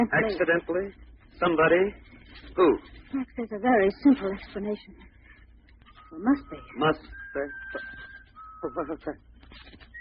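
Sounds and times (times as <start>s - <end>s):
speech: 0.0s - 5.1s, 6.1s - 9.8s
thin steady high eerie bird-like whistle: 5.9s - 9.2s, 9.8s - 9.9s.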